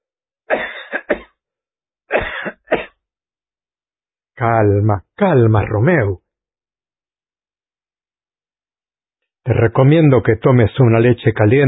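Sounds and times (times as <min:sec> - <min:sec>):
person coughing harshly: 0:00.5 - 0:01.4, 0:02.1 - 0:03.0
speech: 0:04.4 - 0:06.2, 0:09.5 - 0:11.6.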